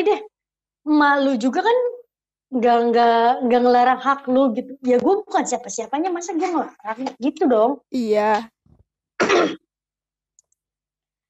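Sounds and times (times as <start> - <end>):
speech: 0.0 - 8.6, 9.4 - 9.6
single rough cough: 9.2 - 9.7.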